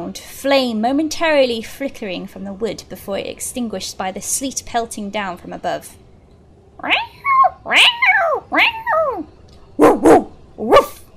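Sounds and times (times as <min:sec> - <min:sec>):
speech: 0:00.1 - 0:06.0, 0:06.8 - 0:11.0
dog whining: 0:06.8 - 0:11.1
dog barking: 0:09.8 - 0:11.1.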